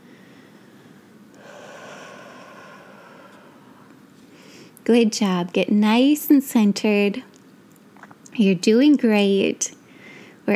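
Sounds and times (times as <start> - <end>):
deep breath drawn in: 0.0 - 4.8, 9.9 - 10.4
speech: 4.8 - 7.3, 8.4 - 9.8.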